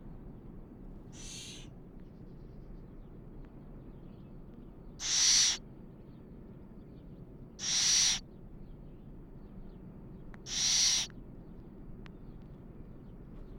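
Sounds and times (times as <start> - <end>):
faint low background rumble: 0.0 - 13.5
juvenile little owl begging calls: 1.2 - 1.7, 5.0 - 5.6, 7.6 - 8.2, 10.4 - 11.1.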